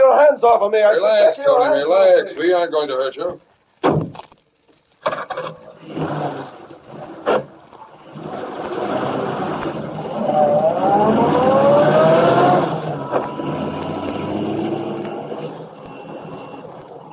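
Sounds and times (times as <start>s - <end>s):
speech: 0.4s - 3.5s
car engine starting, revving and driving away: 5.7s - 17.1s.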